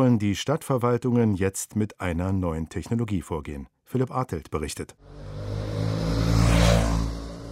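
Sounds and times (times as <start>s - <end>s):
speech: 0.0s - 5.7s
low traffic rumble: 5.0s - 7.5s
mopeds revving on a busy street in Lyon France: 5.0s - 7.5s.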